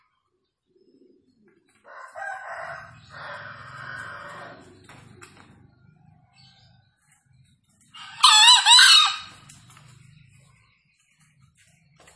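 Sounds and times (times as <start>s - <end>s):
wild green junglefowl crowing from a tree: 1.9s - 4.7s, 8.0s - 9.4s.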